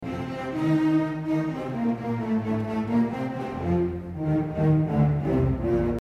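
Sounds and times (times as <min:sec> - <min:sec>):
cello playing recitative: 0:00.0 - 0:05.9.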